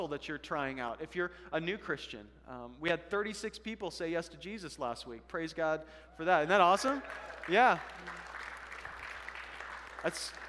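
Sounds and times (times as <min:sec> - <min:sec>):
speech: 0:00.0 - 0:08.2, 0:10.0 - 0:10.4
light scattered audience applause in a large room: 0:06.8 - 0:10.4.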